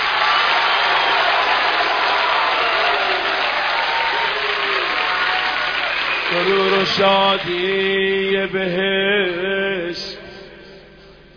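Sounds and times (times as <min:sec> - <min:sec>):
audience clapping: 0:00.0 - 0:08.0
speech: 0:06.4 - 0:10.1.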